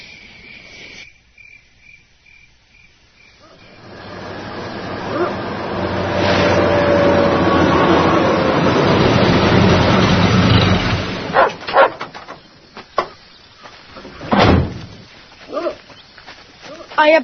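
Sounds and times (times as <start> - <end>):
dense noise burst: 3.7 - 11.4
puppy yipping and barking: 11.3 - 12.0
speech: 17.0 - 17.2.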